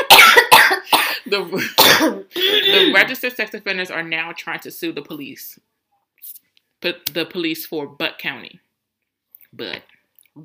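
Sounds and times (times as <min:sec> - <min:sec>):
woman clearing her throat: 0:00.0 - 0:03.0
woman coughing in sharp bursts: 0:00.0 - 0:03.0
speech: 0:01.3 - 0:08.6, 0:09.5 - 0:10.4.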